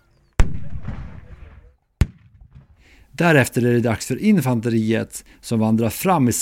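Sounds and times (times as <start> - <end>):
artillery cannon blasts: 0.4 - 2.9
speech: 3.1 - 6.3.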